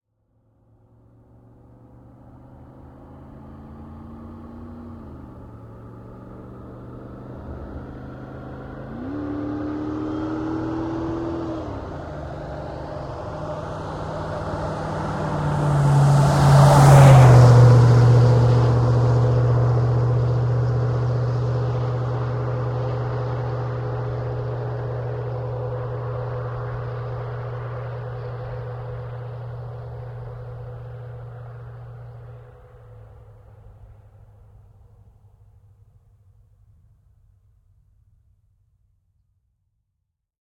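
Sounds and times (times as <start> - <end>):
Jeep Grand Cherokee WJ 4.7 V8 with Magnaflow exhaust passing by on wet asphalt at 80 kmph: 7.2 - 33.0.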